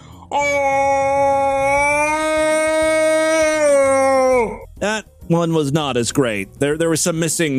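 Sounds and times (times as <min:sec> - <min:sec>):
man imitating a jungle yell as a voiceover demonstration: 0:00.3 - 0:04.6
speech: 0:04.8 - 0:07.5.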